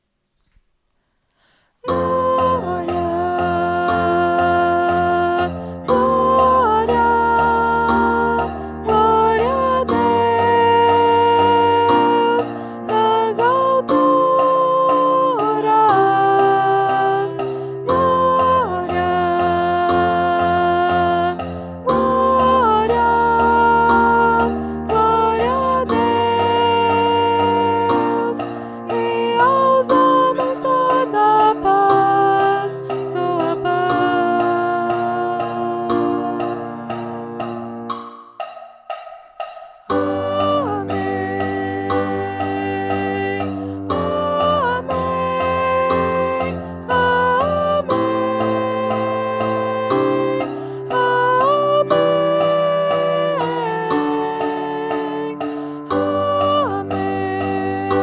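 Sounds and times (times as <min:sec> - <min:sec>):
soprano singing: 0:01.8 - 0:38.0, 0:39.8 - 0:58.0.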